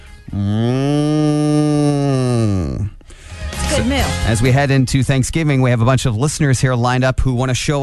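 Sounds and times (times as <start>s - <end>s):
person imitating a cow mooing: 0.3s - 3.0s
short breath: 2.2s - 3.5s
speech: 4.3s - 7.8s.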